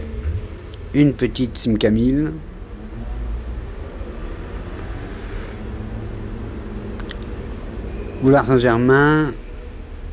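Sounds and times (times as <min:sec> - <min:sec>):
dense traffic rumble on Boulevard Saint-Germain: 0:00.0 - 0:10.1
number 87 bus passing: 0:00.0 - 0:10.1
speech: 0:00.9 - 0:02.5, 0:08.2 - 0:09.4
motorbike passing: 0:02.5 - 0:10.1.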